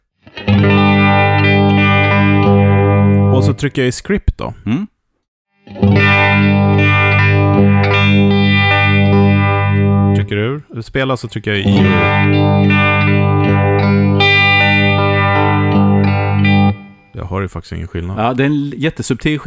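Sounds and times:
distorted electric guitar chord through a phaser pedal: 0.4 - 3.5, 5.8 - 10.3, 11.7 - 17.2
speech: 3.4 - 4.9, 10.2 - 13.2, 17.2 - 19.4.

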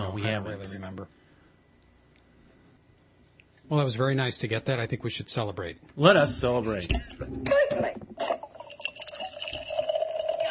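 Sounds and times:
speech: 0.2 - 1.2, 3.7 - 8.3
lager pouring into a glass: 8.2 - 10.5.

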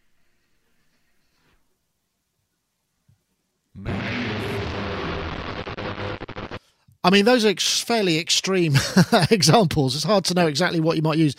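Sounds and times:
distorted noise from a reverb plugin: 3.8 - 6.6
speech: 7.0 - 11.3.

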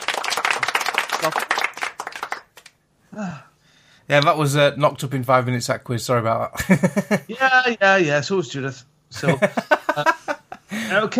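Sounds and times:
audience applause after a quiz: 0.0 - 2.6
speech: 1.2 - 1.5, 3.2 - 3.5, 4.1 - 10.1, 10.9 - 11.1
laughter: 9.2 - 10.8.

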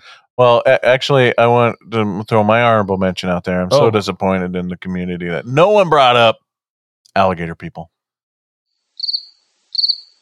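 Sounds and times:
speech: 0.4 - 6.4, 7.1 - 8.0, 9.9 - 10.1
cricket chirps: 9.0 - 10.1.

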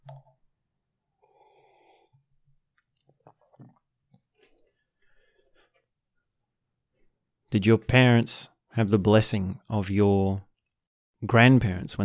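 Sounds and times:
gentle breaths: 1.1 - 2.6, 4.3 - 5.9
sipping of hot tea: 1.2 - 4.9
small swallows: 1.5 - 4.8
speech: 7.5 - 10.5, 11.2 - 12.0.

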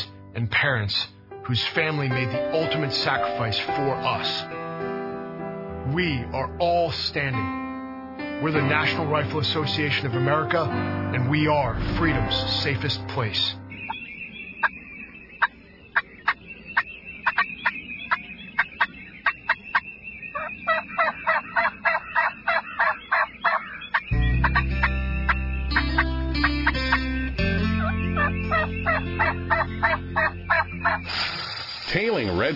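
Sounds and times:
low steady musical backing: 0.0 - 14.7, 24.1 - 31.2
speech: 0.4 - 4.6, 5.9 - 7.6, 8.4 - 13.6
wild turkey gobbling: 13.8 - 31.5.

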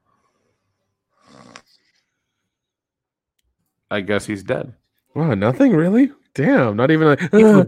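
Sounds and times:
man snoring while asleep: 1.2 - 1.7
speech: 3.9 - 7.6.

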